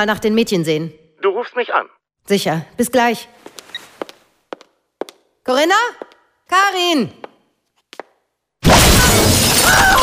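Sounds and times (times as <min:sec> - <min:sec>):
speech: 0:00.0 - 0:03.6, 0:05.5 - 0:07.3
conservatory windows shattering: 0:08.6 - 0:10.0.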